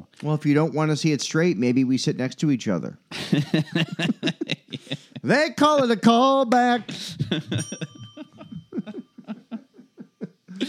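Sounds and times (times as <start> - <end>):
speech: 0.2 - 7.9
people laughing: 3.1 - 5.9, 6.9 - 10.6
small bell ringing: 7.4 - 10.6.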